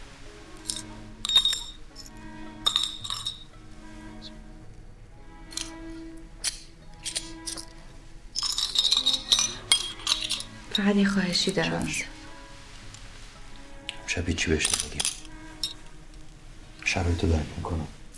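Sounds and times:
broken glass shards clinking and scraping: 0:00.6 - 0:03.5, 0:06.4 - 0:07.7, 0:08.4 - 0:10.9, 0:14.6 - 0:15.8
speech: 0:10.8 - 0:12.2, 0:14.1 - 0:14.8, 0:17.0 - 0:18.0.

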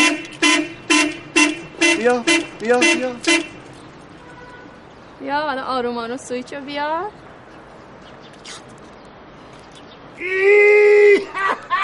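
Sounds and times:
car horn honking: 0:00.0 - 0:04.8
speech: 0:02.0 - 0:03.5, 0:05.2 - 0:07.2, 0:10.2 - 0:11.8.

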